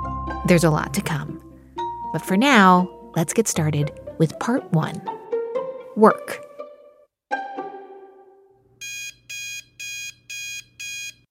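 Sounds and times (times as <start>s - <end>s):
speech: 0.5s - 1.4s, 2.1s - 5.2s, 6.0s - 6.5s
electronic alarm clock ringing: 8.8s - 11.2s.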